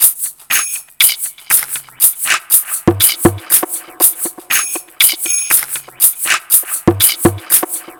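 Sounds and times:
ethnic drum loop: 0.0s - 7.9s.

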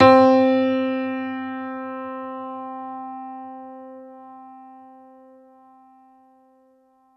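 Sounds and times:
upright piano C3 note struck hard: 0.0s - 4.9s.

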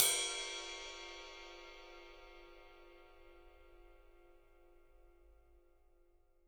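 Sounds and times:
ride cymbal: 0.0s - 2.7s.

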